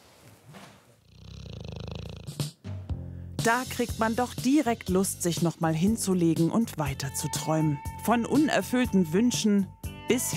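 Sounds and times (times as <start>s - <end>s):
dog snoring asleep in its basket: 0.8s - 2.6s
speech: 3.4s - 10.3s.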